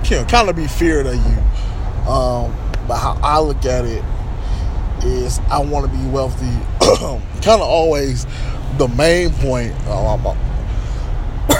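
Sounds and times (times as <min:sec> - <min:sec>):
steady low rumbling noise: 0:00.0 - 0:11.5
speech: 0:00.1 - 0:04.2, 0:05.0 - 0:10.4
person coughing: 0:06.8 - 0:07.2.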